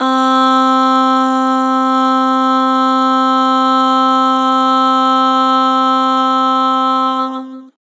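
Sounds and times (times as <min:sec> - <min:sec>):
Harmor aah vocals: 0:00.0 - 0:07.8.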